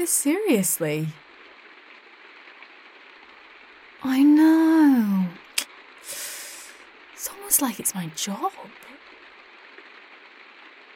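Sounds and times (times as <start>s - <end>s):
speech: 0.0s - 1.2s, 7.6s - 9.0s
recorded rain sounds playing softly: 0.0s - 10.9s.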